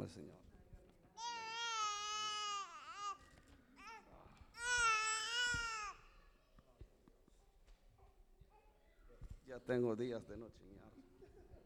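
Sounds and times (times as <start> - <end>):
speech: 0.0 - 0.5, 9.5 - 11.1
baby boy crying during a child dedication ceremony: 1.2 - 3.2, 4.6 - 6.0.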